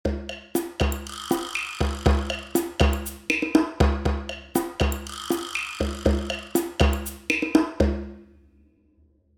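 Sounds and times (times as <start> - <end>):
drum loop in a stairwell: 0.0 - 8.3.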